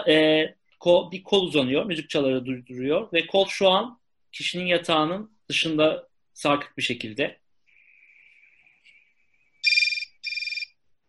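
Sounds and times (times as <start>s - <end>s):
speech: 0.0s - 7.4s
mobile phone ringing in electronic trill bursts: 9.6s - 10.8s.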